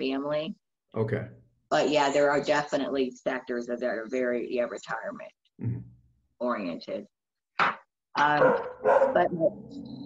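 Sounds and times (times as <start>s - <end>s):
speech: 0.0s - 10.0s
pet dog barking and whining at home: 8.4s - 9.3s.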